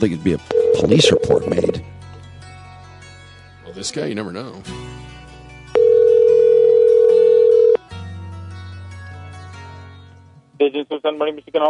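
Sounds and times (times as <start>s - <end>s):
speech: 0.0s - 1.9s, 3.8s - 5.2s, 10.6s - 11.6s
telephone dial tone: 0.5s - 1.4s, 5.8s - 7.8s.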